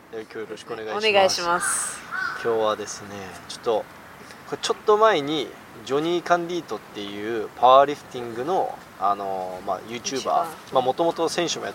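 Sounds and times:
speech: 0:00.1 - 0:11.7
crow cawing: 0:01.5 - 0:02.6.

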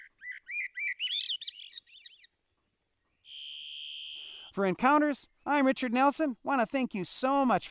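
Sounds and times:
hermit, varied and Swainson's thrushes singing in chorus: 0:00.0 - 0:06.6
speech: 0:04.6 - 0:07.6.

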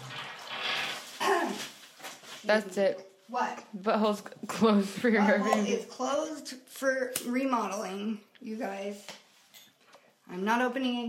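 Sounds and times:
bath water running from the tap into a tub: 0:00.0 - 0:02.2
speech: 0:02.5 - 0:09.2, 0:10.3 - 0:11.0.

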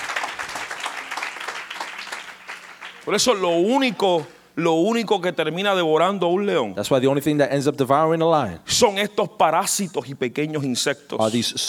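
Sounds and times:
audience applause: 0:00.0 - 0:04.4
speech: 0:03.1 - 0:11.6.

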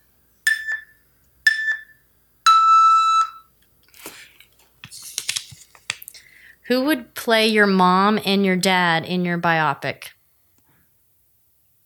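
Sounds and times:
game timer electronic beeps: 0:00.5 - 0:03.5
speech: 0:06.7 - 0:10.2.

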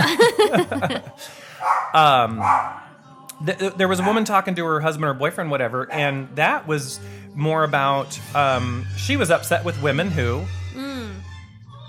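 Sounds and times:
laughter: 0:00.0 - 0:01.4
speech: 0:00.5 - 0:02.8, 0:03.4 - 0:11.3
dog barking: 0:01.6 - 0:02.8, 0:04.0 - 0:04.3, 0:05.9 - 0:06.1.

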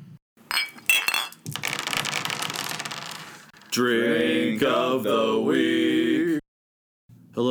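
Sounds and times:
glasses clinking: 0:00.5 - 0:03.8
speech: 0:03.7 - 0:06.4.

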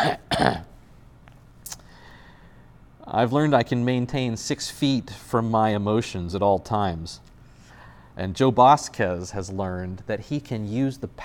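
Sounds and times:
speech: 0:00.0 - 0:00.7, 0:03.1 - 0:07.3, 0:08.2 - 0:11.2
cough: 0:00.0 - 0:00.8.

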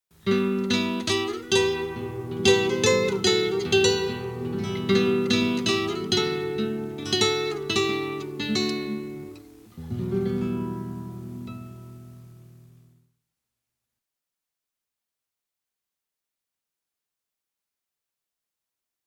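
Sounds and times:
two guitars playing: 0:00.2 - 0:12.9.

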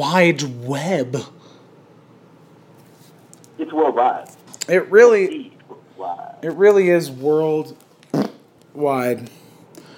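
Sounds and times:
speech: 0:00.0 - 0:01.4, 0:03.7 - 0:09.4
fart: 0:08.1 - 0:08.5.

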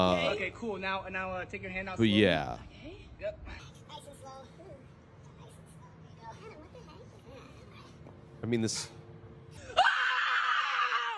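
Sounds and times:
speech: 0:00.0 - 0:03.7, 0:08.4 - 0:09.0
woman screaming: 0:09.6 - 0:11.1.

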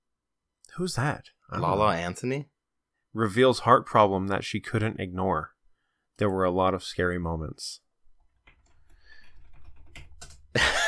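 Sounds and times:
speech: 0:00.8 - 0:02.5, 0:03.1 - 0:05.6, 0:06.2 - 0:07.8
typing on a computer keyboard: 0:08.4 - 0:10.6.

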